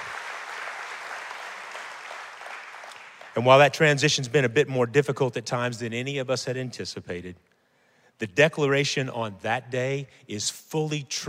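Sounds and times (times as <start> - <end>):
church congregation applauding: 0.0 - 4.0
speech: 3.4 - 7.5, 8.2 - 11.2.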